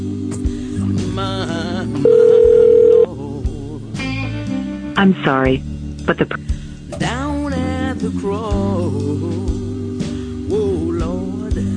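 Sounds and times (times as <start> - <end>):
music: 0.0 - 11.7
telephone ringing: 2.0 - 3.1
speech: 5.0 - 7.1, 8.0 - 9.4.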